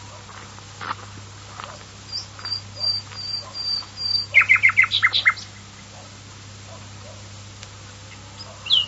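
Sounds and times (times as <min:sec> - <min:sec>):
Common nightingale singing: 0:02.1 - 0:06.0, 0:08.1 - 0:08.8.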